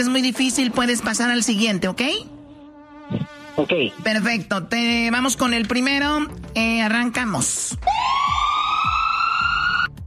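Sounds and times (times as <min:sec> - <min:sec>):
speech: 0:00.0 - 0:02.4, 0:03.1 - 0:08.4
ambulance siren wailing: 0:07.8 - 0:10.0.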